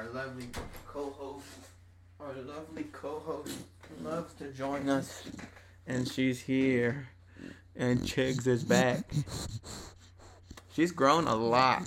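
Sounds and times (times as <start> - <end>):
speech: 0.0 - 9.8, 10.8 - 11.8
door being pulled open with a wooden knock and rattle: 0.4 - 1.0.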